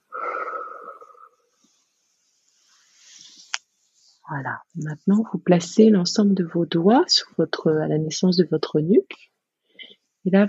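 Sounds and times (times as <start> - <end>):
person breathing out during a relaxation and neck-massage exercise: 0.0 - 1.5
speech: 4.3 - 9.3, 10.2 - 10.4.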